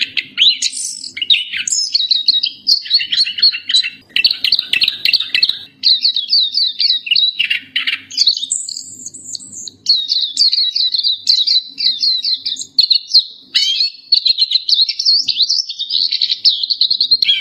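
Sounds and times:
black-capped white-eye chattering warbles: 0:00.0 - 0:17.3.

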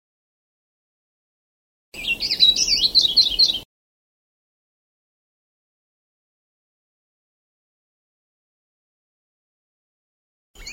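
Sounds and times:
Sulawesi leaf warbler song: 0:02.0 - 0:03.7, 0:10.6 - 0:10.7.

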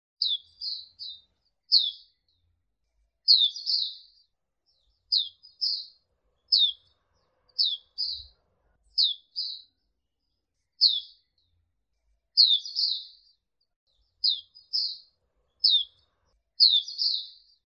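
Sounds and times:
Zosterops bird singing: 0:00.2 - 0:17.6.

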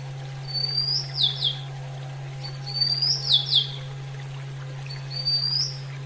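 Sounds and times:
constant low electrical hum: 0:00.0 - 0:06.0
female Oriental magpie-robin singing bright whistled phrases: 0:00.4 - 0:01.7, 0:02.4 - 0:03.9, 0:04.9 - 0:05.9.

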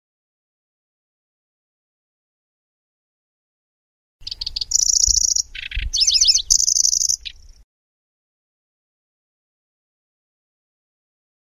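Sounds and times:
Grasshopper warbler song: 0:04.2 - 0:07.6.

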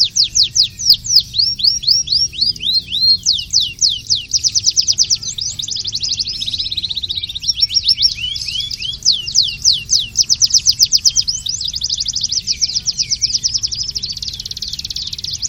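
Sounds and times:
canary singing long version song with trills: 0:00.0 - 0:15.4.

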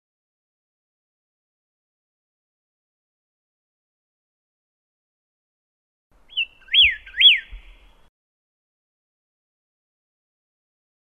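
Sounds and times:
Pyrrhuloxia whistling: 0:06.3 - 0:07.9.

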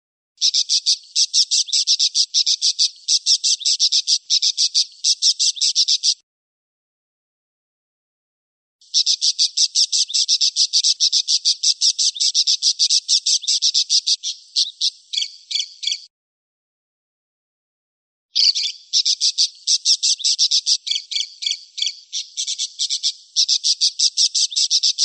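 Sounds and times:
parakeet chattering: 0:00.4 - 0:06.2, 0:09.0 - 0:16.0, 0:18.4 - 0:25.0.

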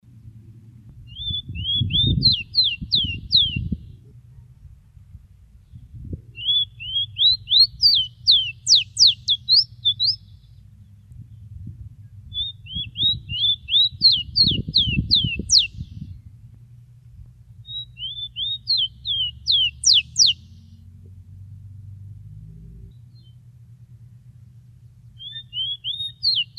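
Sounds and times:
rowti bird call: 0:01.1 - 0:03.7, 0:06.4 - 0:10.6, 0:12.3 - 0:15.8, 0:17.6 - 0:20.6, 0:25.1 - 0:26.5.

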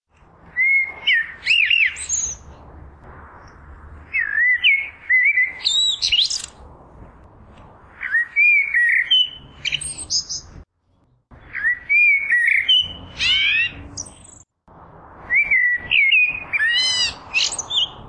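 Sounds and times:
blackbirds singing: 0:00.6 - 0:02.5, 0:04.1 - 0:06.5, 0:08.0 - 0:10.6, 0:11.4 - 0:14.4, 0:15.3 - 0:18.0.

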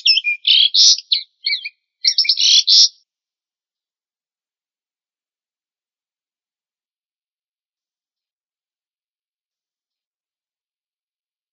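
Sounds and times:
Asian pied starling singing: 0:00.0 - 0:03.0.

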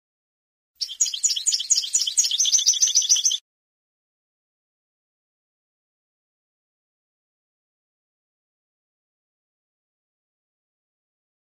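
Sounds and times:
European goldfinch song: 0:00.8 - 0:03.4.

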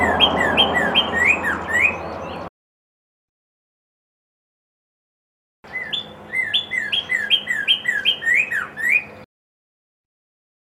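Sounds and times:
Red-crested cardinal singing downslurred whistled phrases: 0:00.1 - 0:02.1, 0:05.8 - 0:09.2.

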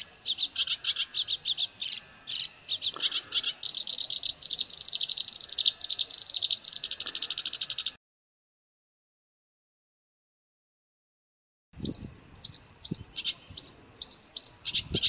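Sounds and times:
black-browed reed warbler song with grating chatter: 0:00.0 - 0:08.0, 0:11.8 - 0:15.0.

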